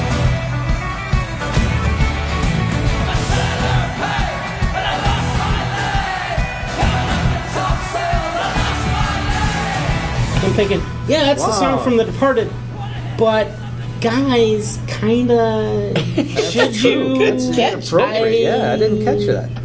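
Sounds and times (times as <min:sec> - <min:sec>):
loud dense rock song about a pirate: 0:00.0 - 0:11.1
group of voices screaming a rowdy refrain: 0:03.1 - 0:10.1
speech: 0:10.6 - 0:12.6, 0:13.2 - 0:19.6.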